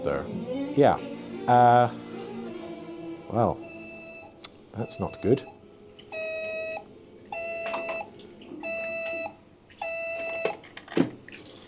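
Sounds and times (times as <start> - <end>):
speech: 0.0 - 2.0, 3.3 - 3.7, 4.8 - 5.5
phone ringing with electronic ringtone: 3.6 - 10.6.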